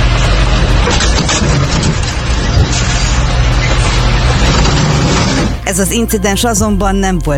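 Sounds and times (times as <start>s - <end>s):
loud continuous rumbling roar of heavy truck: 0.0s - 5.6s
grinding and scraping of truck against parked car: 0.0s - 5.7s
heavy dump truck ramming and shoving a parked car: 0.0s - 5.7s
speech: 5.7s - 7.3s.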